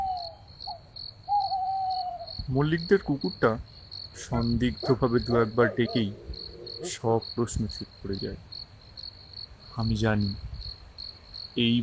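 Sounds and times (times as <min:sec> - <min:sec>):
owl hooting at night from a garden: 0:00.0 - 0:02.4, 0:04.3 - 0:07.1
continuous high insect chirr: 0:00.0 - 0:11.8
speech: 0:02.5 - 0:08.5, 0:09.8 - 0:10.5, 0:11.6 - 0:11.8.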